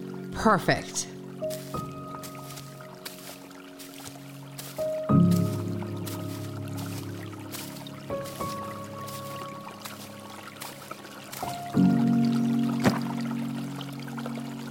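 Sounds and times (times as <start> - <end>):
water drips and splashes: 0.0 - 14.6
speech: 0.4 - 1.1.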